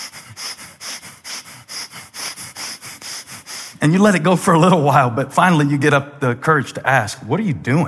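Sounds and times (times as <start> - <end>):
deliberate quick rhythmic sniffs breathing in through the nose: 0.0 - 3.8
speech: 3.8 - 7.8.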